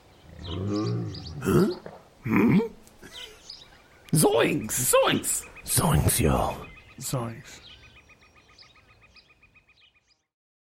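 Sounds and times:
creature roaring in rough bursts: 0.3s - 2.7s
speech: 0.5s - 2.7s, 4.1s - 7.7s.

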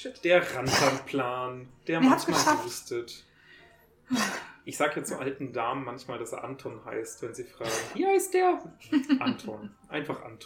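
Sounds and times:
speech: 0.0s - 3.3s, 4.1s - 10.4s
dog coughing: 0.5s - 1.2s, 2.1s - 2.7s, 7.6s - 8.0s.

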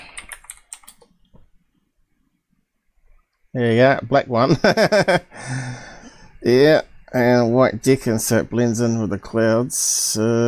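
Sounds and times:
typing on a computer keyboard: 0.0s - 1.2s
faint low hum: 0.0s - 10.4s
speech: 3.6s - 10.4s.

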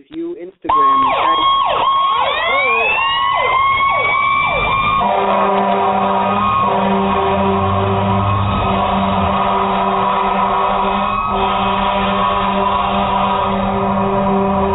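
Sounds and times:
speech: 0.0s - 1.2s
loud wailing emergency siren: 0.7s - 14.7s.

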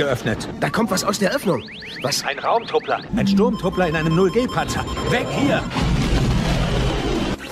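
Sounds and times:
speech: 0.0s - 6.0s
torpedo striking a ship with a loud crash: 5.6s - 7.4s.

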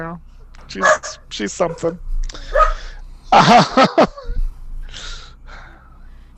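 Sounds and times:
speech: 0.0s - 2.6s, 3.3s - 4.2s
corgi yipping: 0.8s - 1.9s, 2.6s - 2.8s
corgi barking: 0.8s - 2.9s
laughter: 3.3s - 4.4s.

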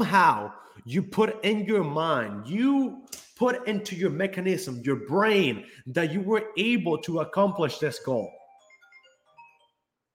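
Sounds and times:
speech: 0.0s - 8.4s
mobile phone ringtone with bright electronic melody: 8.1s - 10.1s.

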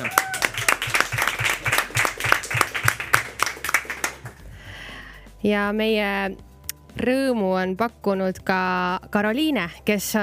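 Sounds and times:
audience applauding: 0.0s - 4.5s
speech: 5.4s - 10.2s.

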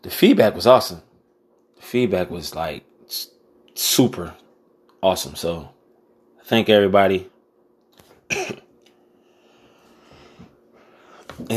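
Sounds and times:
speech: 0.0s - 1.1s, 1.9s - 4.4s, 5.0s - 5.8s, 6.4s - 7.3s, 8.3s - 8.6s
single sharp cough: 8.3s - 8.7s
breathing: 9.0s - 11.4s.

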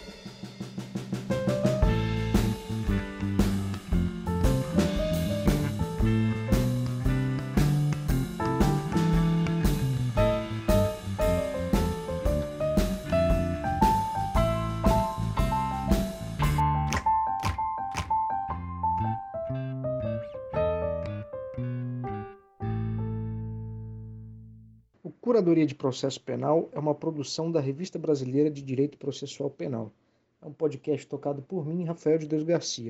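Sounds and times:
upbeat instrumental podcast closing jingle: 1.2s - 23.9s
speech: 25.4s - 32.8s.

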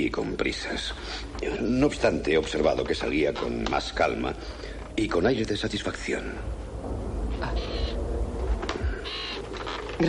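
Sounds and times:
speech: 0.0s - 6.6s
low steady rumbling background: 0.0s - 10.0s
crow cawing by a fresh grave in an abbey cemetery: 7.4s - 8.0s, 8.8s - 9.6s.

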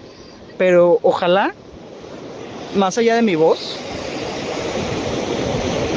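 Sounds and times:
ocean waves breaking on shore: 0.0s - 5.9s
speech: 0.6s - 1.6s, 2.7s - 4.0s.

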